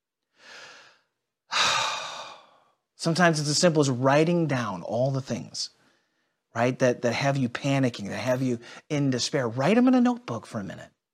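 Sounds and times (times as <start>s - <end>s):
deep breath: 0.3s - 2.8s, 5.8s - 6.5s, 8.6s - 8.9s
speech: 3.0s - 5.8s, 6.6s - 11.0s.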